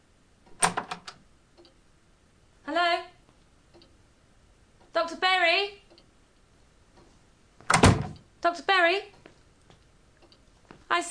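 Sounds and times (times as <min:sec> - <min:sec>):
door opening with latch clicks and rattles: 0:00.5 - 0:01.2, 0:07.7 - 0:08.2
speech: 0:05.1 - 0:05.8, 0:08.4 - 0:09.2.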